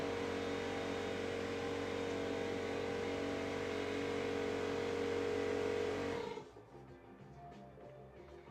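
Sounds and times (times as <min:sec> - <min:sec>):
air compressor running and switched off: 0:00.0 - 0:06.4.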